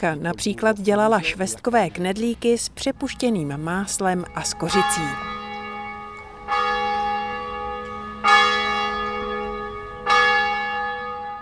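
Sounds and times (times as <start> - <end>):
speech: 0.0 - 5.3
church bells striking noon in the small town of Beceka: 2.2 - 11.4.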